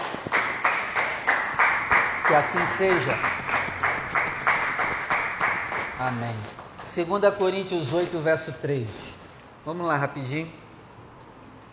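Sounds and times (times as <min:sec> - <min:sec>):
crowd clapping in a steady rhythmic beat: 0:00.0 - 0:07.6
speech: 0:02.3 - 0:03.5, 0:06.0 - 0:10.6.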